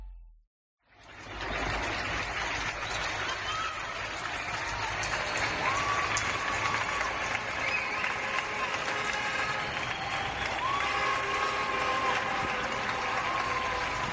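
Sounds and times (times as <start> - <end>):
many people applauding outdoors from windows and balconies: 0.9 - 14.1
whistles from the crowd: 4.9 - 14.1.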